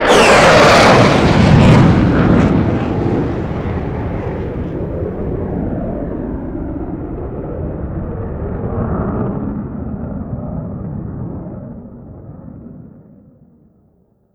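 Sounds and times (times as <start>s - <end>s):
MiG-29 jet fighter flyby: 0.0s - 9.6s.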